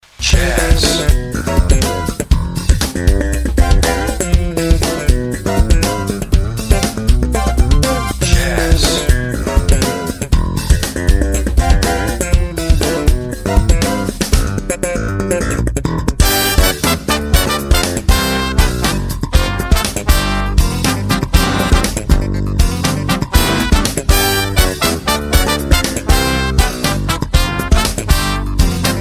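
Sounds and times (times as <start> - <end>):
funk jazz music: 0.2 - 29.0.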